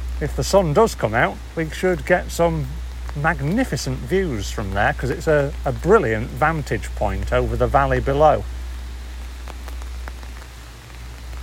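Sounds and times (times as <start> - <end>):
heavy rain falling outdoors: 0.0 - 11.4
speech: 0.2 - 8.6.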